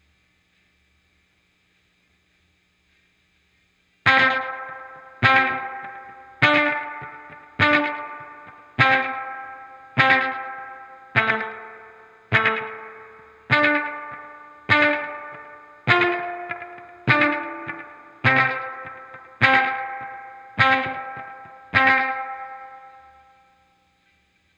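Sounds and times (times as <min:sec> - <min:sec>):
guitar volume swell: 0:04.1 - 0:23.3.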